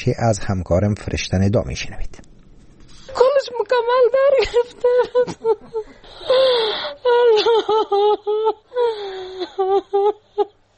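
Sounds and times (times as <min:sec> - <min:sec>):
speech: 0:00.0 - 0:02.3, 0:03.4 - 0:10.6
grieving mother wailing and sobbing for daughters killed in a car bombing: 0:03.9 - 0:10.6.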